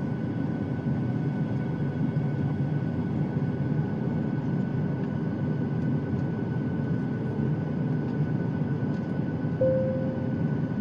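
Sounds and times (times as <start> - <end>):
airliner cabin engine rumble during landing approach: 0.0 - 10.8.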